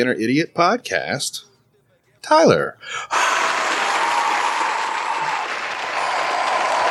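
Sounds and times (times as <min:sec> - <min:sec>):
speech: 0:00.0 - 0:01.5, 0:02.2 - 0:03.5
crowd applause: 0:03.1 - 0:06.8.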